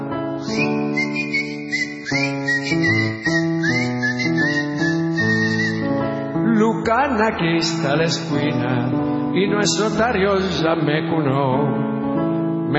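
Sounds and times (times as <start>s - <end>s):
steady instrumental accompaniment: 0.0s - 6.5s
person on a street corner whistling a lilting tango melody: 0.3s - 6.2s
speech: 7.0s - 11.9s.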